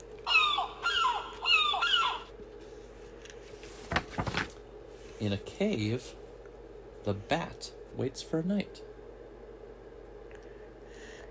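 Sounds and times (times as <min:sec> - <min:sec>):
seagull calling: 0:00.3 - 0:02.3
speech: 0:05.2 - 0:06.2, 0:07.0 - 0:08.9.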